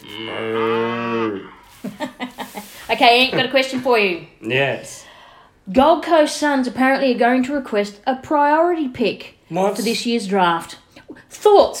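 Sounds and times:
cow mooing: 0.0 - 1.6
speech: 2.9 - 5.0, 5.7 - 11.7.

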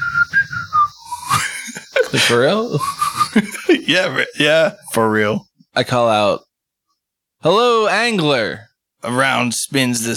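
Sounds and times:
person whistling a tune: 0.0 - 1.7, 2.8 - 3.4
laughter: 1.2 - 4.4
speech: 2.1 - 6.5, 7.4 - 10.1.

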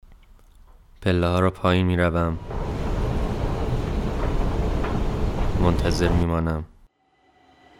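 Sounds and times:
speech: 1.0 - 2.6, 5.6 - 6.7
metro train arriving at a station rumbling: 2.1 - 6.9.

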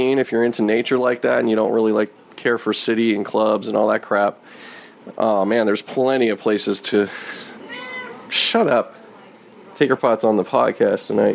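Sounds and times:
speech: 0.0 - 7.5, 8.3 - 9.0, 9.8 - 11.3
pet cat meowing: 7.7 - 8.3.

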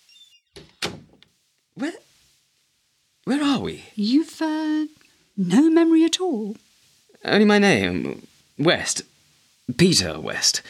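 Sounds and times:
door closing with solid thunks: 0.6 - 1.2
speech: 1.8 - 2.0, 3.3 - 6.6, 7.2 - 9.1, 9.7 - 10.6.

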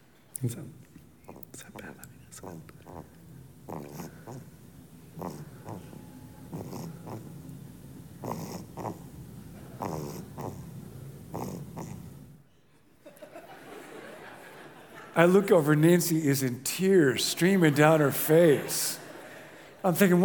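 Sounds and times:
speech: 0.4 - 0.9, 1.6 - 4.5, 15.2 - 19.0, 19.8 - 20.2
baby snoring with snuffling breaths: 1.2 - 12.4
laughter: 13.0 - 15.6, 16.9 - 20.2.

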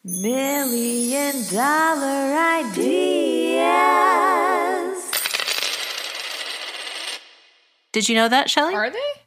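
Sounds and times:
short jingle of shimmering orchestral chimes: 0.0 - 5.2
speech: 0.1 - 4.0, 8.0 - 9.2
bright clattering cascade of coins: 5.1 - 7.3.

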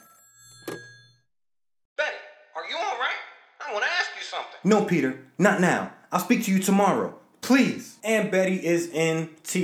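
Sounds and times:
telephone bell ringing: 0.0 - 1.3
speech: 3.7 - 9.6.

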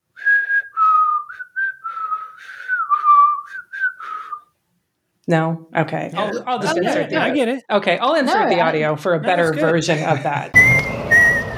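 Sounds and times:
person whistling a film theme tune: 0.2 - 4.5, 10.6 - 11.5
speech: 5.3 - 10.7
laughter: 6.2 - 10.6.

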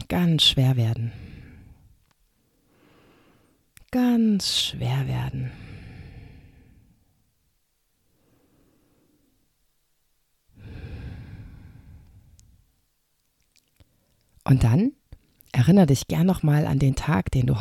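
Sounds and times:
speech: 0.1 - 1.2, 3.9 - 5.6, 14.5 - 17.5
slow deep breathing in and out during a relaxation exercise: 1.1 - 3.7, 5.5 - 7.3, 8.0 - 9.6, 10.5 - 12.7.

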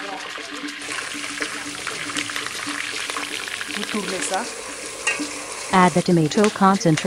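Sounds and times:
crackles and pops of frying oil: 0.0 - 7.0
sliced onion, bell pepper and chili pepper sizzling in a hot pan of oil: 0.0 - 7.0
speech: 3.9 - 4.6, 5.2 - 7.0.

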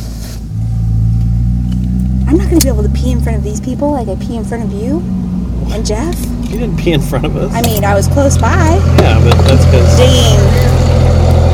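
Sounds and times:
pickup truck engine revving and rolling past: 0.5 - 11.5
speech: 2.5 - 10.8.

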